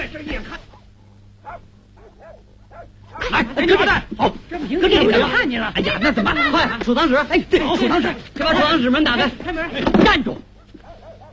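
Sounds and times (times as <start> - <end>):
steady low hum: 0.0 - 9.8
speech: 0.1 - 0.7, 2.8 - 10.5
dog barking in short faint yelps: 0.5 - 3.4, 10.5 - 11.3
laughter: 4.6 - 9.6.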